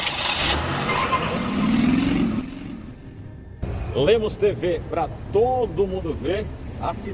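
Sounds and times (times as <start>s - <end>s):
car engine humming as it passes: 0.0s - 4.2s
constant broadband city road roar: 0.0s - 7.1s
speech: 4.0s - 7.1s.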